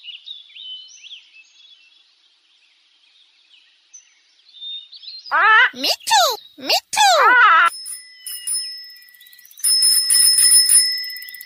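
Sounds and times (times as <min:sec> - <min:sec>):
speech: 0:05.3 - 0:07.7
bicycle bell ringing: 0:07.5 - 0:11.4.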